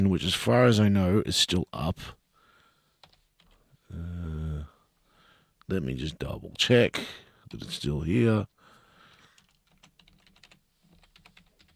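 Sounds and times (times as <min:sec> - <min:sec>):
speech: 0:00.0 - 0:02.2, 0:05.7 - 0:08.5
typing on a computer keyboard: 0:03.0 - 0:03.6, 0:09.1 - 0:11.7.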